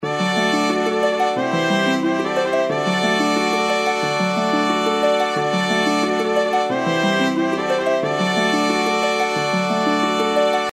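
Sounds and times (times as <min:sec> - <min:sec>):
intro background music: 0:00.0 - 0:10.7.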